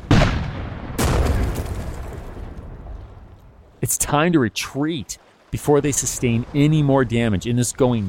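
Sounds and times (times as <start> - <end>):
heavy artillery shell explosions: 0.0 - 2.9
speech: 3.8 - 8.0.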